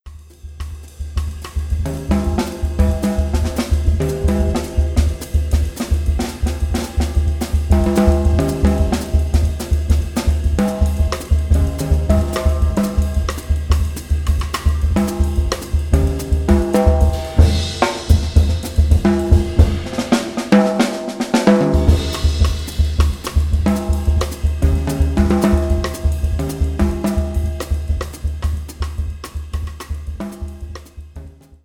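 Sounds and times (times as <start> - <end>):
rhythmic samba jazz session music: 0.1 - 31.1.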